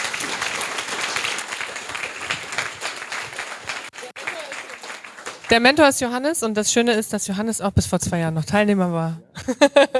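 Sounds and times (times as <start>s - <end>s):
audience applause for a group at an event: 0.0s - 5.8s
speech: 5.5s - 9.9s.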